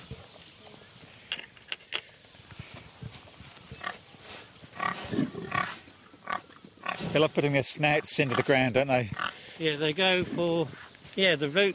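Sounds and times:
pigs snuffling and grunting at feeding time: 0:03.6 - 0:09.4
short squeals of pigs: 0:04.8 - 0:07.2, 0:07.9 - 0:09.4
speech: 0:07.2 - 0:11.7.

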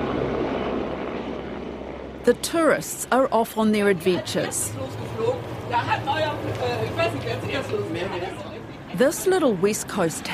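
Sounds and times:
helicopters flying overhead: 0:00.0 - 0:10.3
speech: 0:02.3 - 0:10.3.

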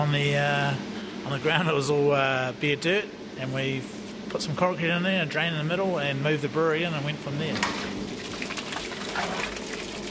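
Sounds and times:
speech: 0:00.0 - 0:08.0
water filling the mash tun for pale ale at a small brewery: 0:08.0 - 0:10.0.

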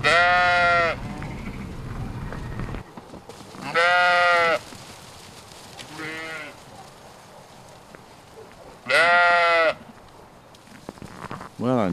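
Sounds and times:
shaggy self-shedding sheep bleating on a farm: 0:00.0 - 0:01.6, 0:03.6 - 0:04.6, 0:05.8 - 0:06.6, 0:08.8 - 0:10.0.

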